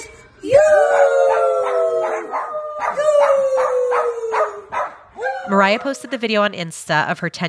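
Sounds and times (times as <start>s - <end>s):
dogs howling along to a Christmas song: 0.4s - 6.2s
speech: 5.5s - 7.4s.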